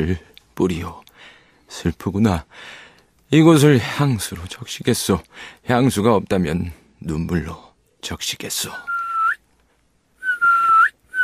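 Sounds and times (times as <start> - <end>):
speech: 0.0 - 8.9
page's warning whistle at night: 8.9 - 9.4, 10.2 - 11.2.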